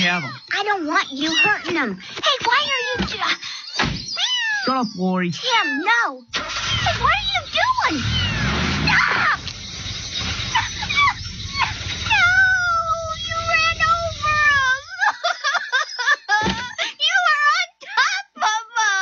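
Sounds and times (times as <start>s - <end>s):
speech: 0.0s - 3.4s, 4.7s - 9.4s
kittens mewing in a box: 0.0s - 9.6s, 10.2s - 15.1s
laughter: 10.3s - 11.9s, 14.2s - 17.4s.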